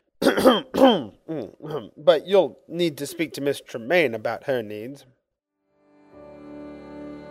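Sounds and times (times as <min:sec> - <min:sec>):
person coughing and clearing throat: 0:00.2 - 0:02.0
speech: 0:00.4 - 0:05.2.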